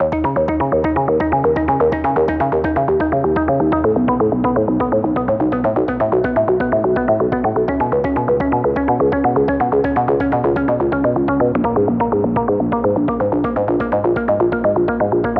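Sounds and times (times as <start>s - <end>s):
deep minimal electronic music: 0.0s - 15.3s.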